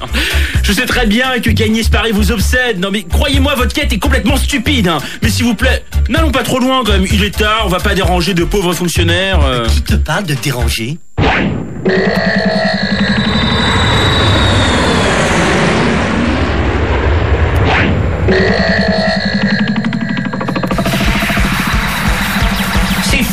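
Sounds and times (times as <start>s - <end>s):
speech: 0.0s - 12.6s, 18.3s - 18.7s
small airplane engine roaring while landing on an apartment building roof: 12.2s - 23.0s.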